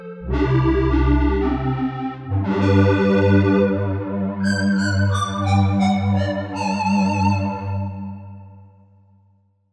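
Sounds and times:
square pad on a Korg MSC-12S synth: 0.2 - 8.2.

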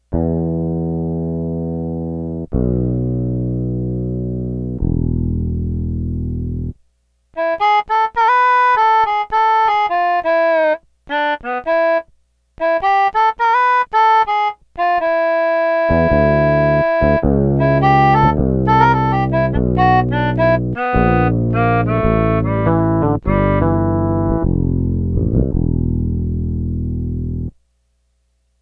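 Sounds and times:
fretless bass: 0.1 - 6.8, 15.8 - 27.6
keyboard: 0.1 - 6.8, 7.4 - 27.6
harmonica: 7.4 - 24.5.

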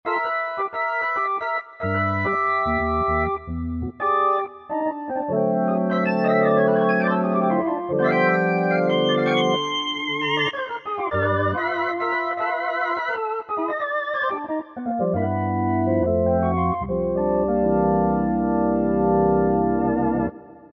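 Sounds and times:
Korg M1 synthesizer organ: 0.1 - 20.7.

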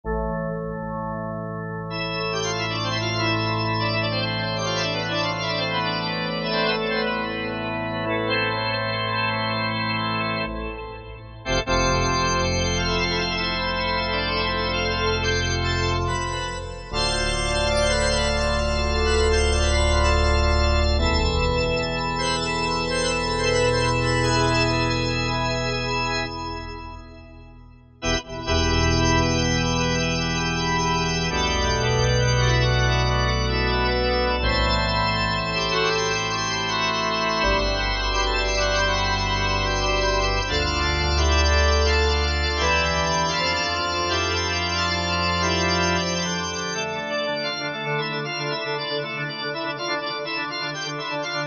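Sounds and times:
Korg M1 synthesizer pipe organ: 0.0 - 51.4.

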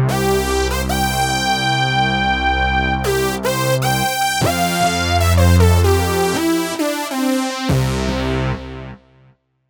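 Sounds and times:
brass fanfare: 0.1 - 8.6.

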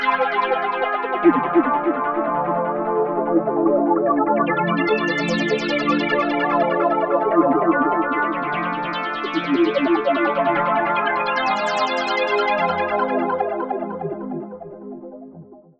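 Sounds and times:
synthesizer arpeggios: 0.2 - 14.9.

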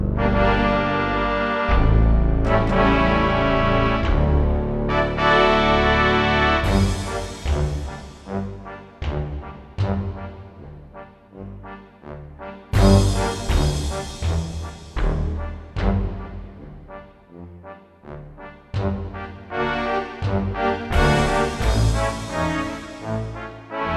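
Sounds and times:
orchestra playing: 0.2 - 23.9.

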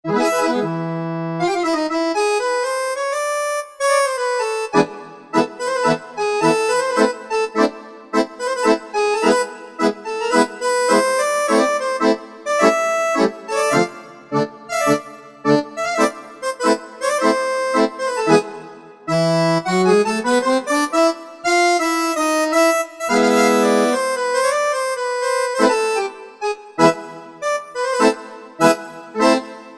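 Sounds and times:
Korg MSC-9S organ: 0.1 - 29.7
bandoneon: 0.1 - 29.7.

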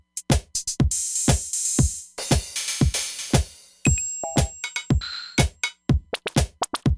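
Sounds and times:
Roland Fantom XR machine drum kit: 0.2 - 6.9.

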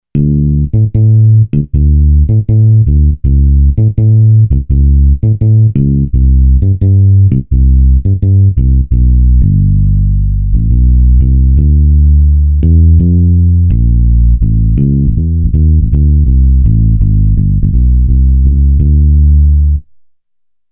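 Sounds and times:
low fingered bass guitar: 0.0 - 20.0.

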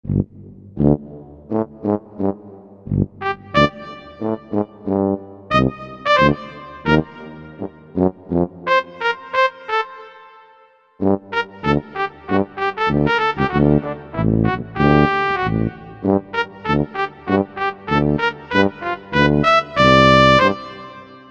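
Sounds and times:
Korg MSC-11S brass tuba: 0.0 - 21.2
Korg MSC-11S brass trumpet: 3.2 - 21.2.

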